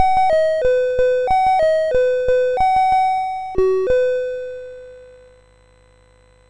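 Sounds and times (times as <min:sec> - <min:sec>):
MOS 6581 SID chip game music: 0:00.0 - 0:04.9.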